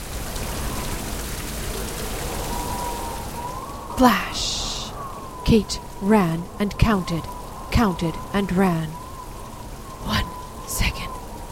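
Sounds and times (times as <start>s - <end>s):
heavy rain pouring in a storm: 0.0s - 11.5s
wind-driven rushing noise of a storm: 0.0s - 11.5s
speech: 4.0s - 4.6s, 5.5s - 9.0s.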